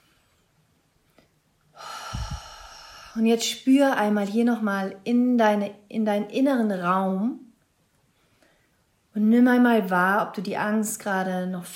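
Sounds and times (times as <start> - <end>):
person breathing deeply in and out: 1.8 - 3.2
speech: 3.2 - 7.4, 9.2 - 11.7.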